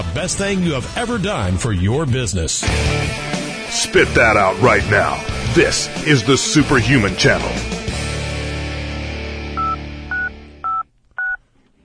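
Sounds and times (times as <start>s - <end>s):
speech: 0.0s - 7.8s
telephone keypad dialing tones: 9.6s - 11.4s.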